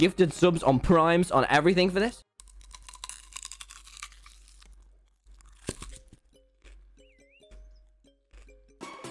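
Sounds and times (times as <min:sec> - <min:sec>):
speech: 0:00.0 - 0:02.3
person biting and crunching a raw unpeeled onion: 0:02.3 - 0:07.2
quiet chewing: 0:02.4 - 0:07.2.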